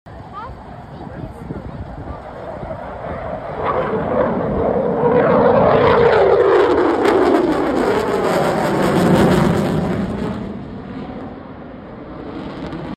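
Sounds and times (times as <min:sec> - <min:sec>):
F-22 Raptor jet aircraft: 0:00.1 - 0:12.9.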